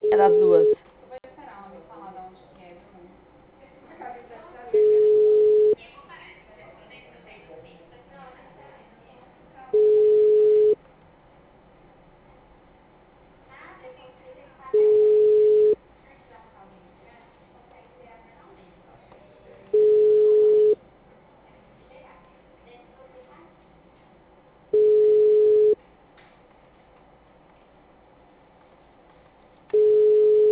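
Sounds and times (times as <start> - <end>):
telephone ringback tone of an unanswered call: 0.0 - 0.8, 4.8 - 5.8, 9.8 - 10.8, 14.8 - 15.8, 19.8 - 20.8, 24.8 - 25.8, 29.8 - 30.4
speech: 0.1 - 0.8.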